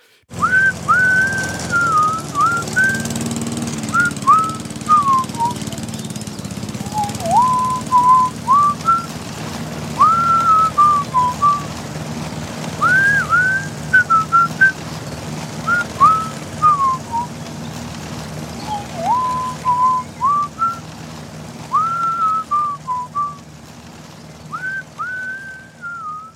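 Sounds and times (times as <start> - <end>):
steady low hum: 0.0 - 26.3
person whistling a melodic tune: 0.4 - 3.2, 3.9 - 5.8, 6.8 - 9.1, 10.0 - 11.6, 12.8 - 14.8, 15.7 - 17.3, 18.6 - 20.8, 21.7 - 23.4, 24.5 - 26.3.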